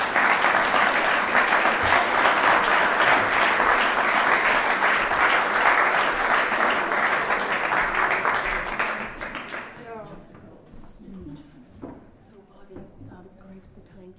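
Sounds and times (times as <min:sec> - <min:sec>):
large audience applauding: 0:00.0 - 0:10.0.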